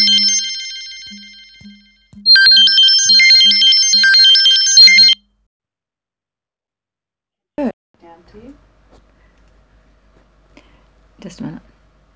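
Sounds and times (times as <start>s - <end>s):
telephone ringing with a warbling electronic tone: 0.0s - 1.7s, 2.3s - 5.2s.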